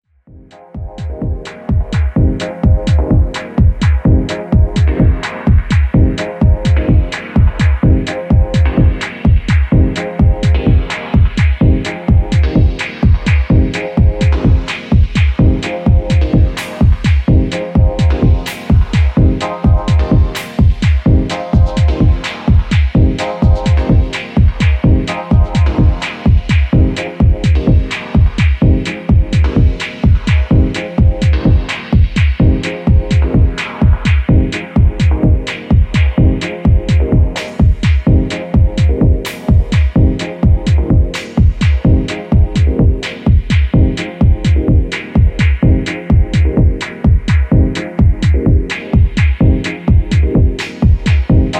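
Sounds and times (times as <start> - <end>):
dub harmonics: 0.3 - 51.5.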